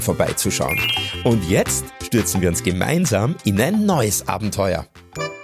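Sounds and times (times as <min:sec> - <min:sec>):
speech: 0:00.0 - 0:05.3
melodic notification chime announcing an incoming message: 0:00.7 - 0:01.4.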